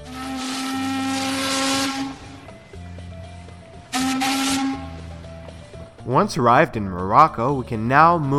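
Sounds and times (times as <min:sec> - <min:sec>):
ship's horn whistle: 0:00.0 - 0:02.8, 0:03.8 - 0:05.6
steady engine rumble: 0:00.0 - 0:07.8
speech: 0:06.1 - 0:08.3.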